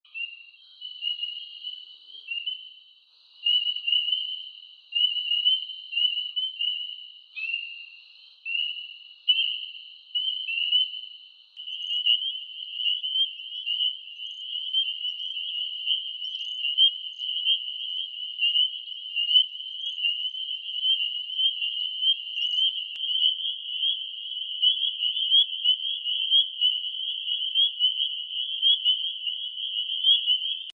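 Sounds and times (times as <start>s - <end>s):
spring peeper frogs calling: 0.1s - 30.7s.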